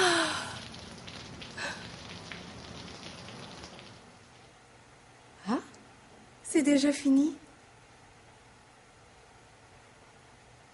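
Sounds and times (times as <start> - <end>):
steady rain drops pattering on a surface: 0.0 - 4.7
splash: 0.2 - 4.0
speech: 6.6 - 7.4.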